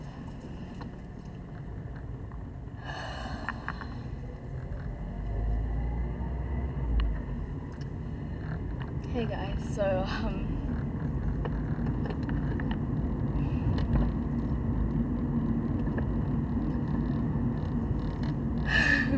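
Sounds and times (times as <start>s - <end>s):
road and engine rumble inside a moving car: 0.0s - 19.1s
speech: 9.2s - 10.5s.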